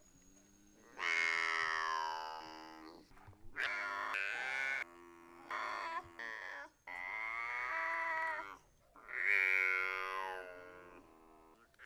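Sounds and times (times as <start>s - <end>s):
binturong wailing calls: 0.9s - 2.7s, 3.6s - 11.0s.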